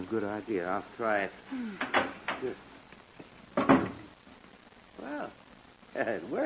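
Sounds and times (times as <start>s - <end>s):
speech: 0.1s - 2.7s, 6.0s - 6.4s
wooden clothes closet door closing with clunks and rattles: 1.8s - 2.5s, 3.6s - 4.1s.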